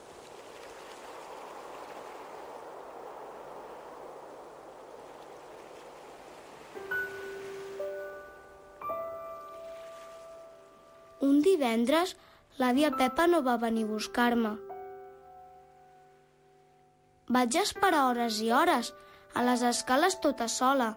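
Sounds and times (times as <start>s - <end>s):
rushing hiss of ocean waves heard in a seashell: 0.0s - 11.2s
speech: 11.2s - 14.7s, 17.3s - 20.9s.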